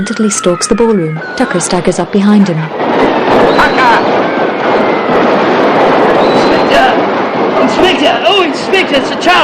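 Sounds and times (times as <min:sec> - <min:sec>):
faint whistling firework streak: 0:00.0 - 0:02.2, 0:03.3 - 0:04.4, 0:06.2 - 0:07.0
speech: 0:00.0 - 0:04.1, 0:07.9 - 0:09.4
box of fireworks exploding in golden sprays: 0:00.7 - 0:09.4.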